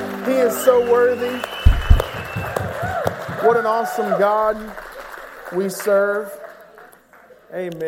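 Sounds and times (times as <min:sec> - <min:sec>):
audience at a church service clapping: 0:00.0 - 0:07.8
speech: 0:00.3 - 0:01.6, 0:03.4 - 0:04.8, 0:05.5 - 0:06.4, 0:07.5 - 0:07.8
faint rising whistle-like tone: 0:00.6 - 0:02.6
low thumps: 0:01.6 - 0:03.5.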